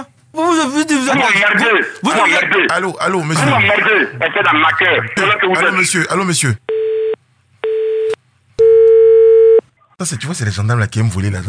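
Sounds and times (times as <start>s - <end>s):
speech: 0.4s - 6.7s, 10.0s - 11.4s
telephone line tone after the other party hung up: 6.7s - 9.6s.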